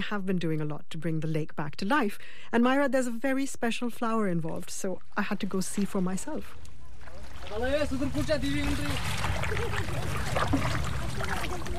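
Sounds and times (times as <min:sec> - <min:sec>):
speech: 0:00.0 - 0:06.7, 0:07.5 - 0:11.7
water sloshing and trickling from a small wooden boat rowed with a heart-shaped paddle on a lake: 0:04.1 - 0:11.7.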